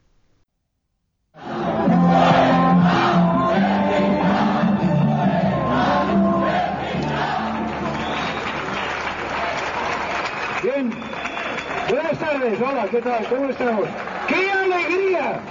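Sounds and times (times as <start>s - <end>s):
hostile crowd shouting at political rally: 1.4s - 10.1s
scattered clapping: 7.0s - 15.5s
speech: 12.9s - 15.5s.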